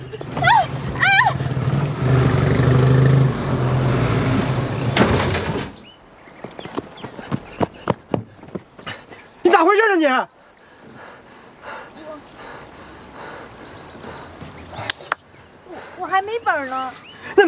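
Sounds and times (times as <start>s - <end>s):
loud car engine roaring and revving: 0.1s - 5.8s
sharp rapid clattering knocks: 4.6s - 5.9s
speech: 9.8s - 10.4s, 16.1s - 17.4s.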